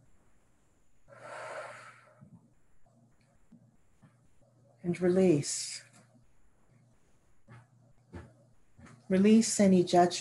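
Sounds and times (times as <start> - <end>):
person inhaling deeply during guided meditation: 1.1 - 2.3
speech: 4.9 - 5.8, 9.1 - 10.1.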